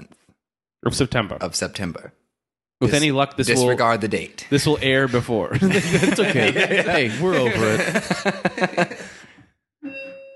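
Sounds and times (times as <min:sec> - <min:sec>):
speech: 0:00.8 - 0:02.2, 0:02.8 - 0:09.2
laughter: 0:05.5 - 0:09.4
doorbell chiming: 0:09.8 - 0:10.3.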